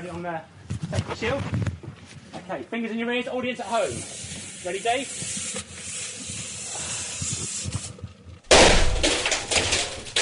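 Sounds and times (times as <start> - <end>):
speech: 0.0 - 1.8, 2.4 - 5.4
CO2 gas hissing: 3.6 - 8.0
loud bang of CO2 pressure release: 8.5 - 10.1.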